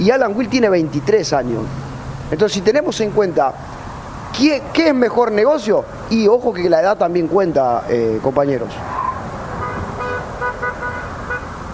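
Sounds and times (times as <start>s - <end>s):
speech: 0.0s - 9.0s
traffic noise: 0.0s - 11.7s
car horns honking: 9.6s - 11.7s.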